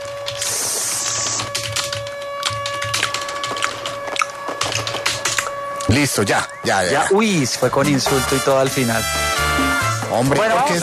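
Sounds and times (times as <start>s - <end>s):
typing on a computer keyboard: 0.0s - 5.5s
steady hum: 0.0s - 10.8s
speech: 6.0s - 9.4s, 10.1s - 10.8s.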